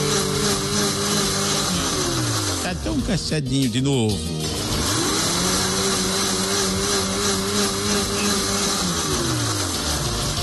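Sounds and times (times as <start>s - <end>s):
blender mixing thick pumpkin cake batter: 0.0s - 3.1s, 4.4s - 10.4s
speech: 2.7s - 4.5s.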